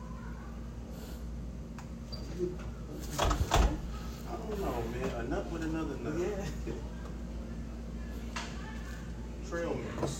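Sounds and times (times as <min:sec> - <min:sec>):
steady hum: 0:00.0 - 0:10.1
door swinging shut: 0:03.1 - 0:03.8
speech: 0:05.2 - 0:07.0, 0:09.5 - 0:10.1.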